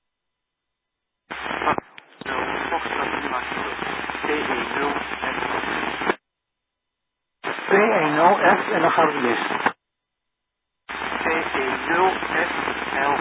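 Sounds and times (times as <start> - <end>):
loud radio static with crackling hiss: 1.3 - 6.2, 7.4 - 9.8, 10.9 - 13.1
speech: 7.8 - 9.7.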